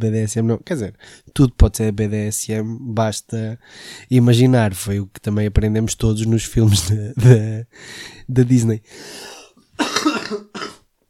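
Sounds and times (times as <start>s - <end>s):
speech: 0.0s - 10.6s
raspy cough: 9.8s - 10.9s.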